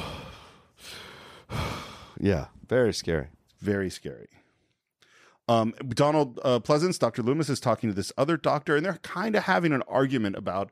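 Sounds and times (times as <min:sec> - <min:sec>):
heavy breathing in a horror film scene: 0:00.0 - 0:02.2, 0:04.3 - 0:05.5
speech: 0:02.2 - 0:04.4, 0:05.5 - 0:10.6.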